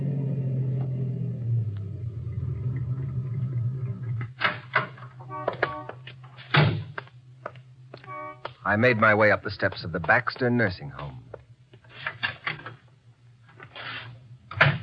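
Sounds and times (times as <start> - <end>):
car engine droning in a steady low rumble: 0.0 - 6.4
speech: 8.7 - 11.2.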